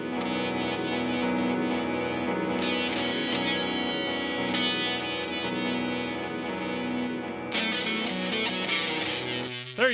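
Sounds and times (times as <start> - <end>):
distorted guitar-like tone with tape delay echo: 0.0 - 9.9.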